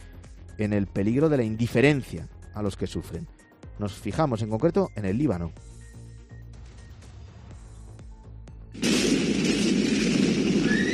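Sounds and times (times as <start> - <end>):
speech: 0.6 - 5.7
large port explosion: 8.8 - 10.9.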